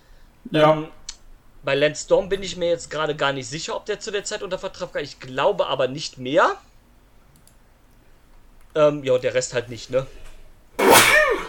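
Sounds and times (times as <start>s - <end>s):
speech: 0.4s - 1.0s, 1.6s - 6.7s, 8.7s - 10.2s
single loud sneeze: 10.8s - 11.4s.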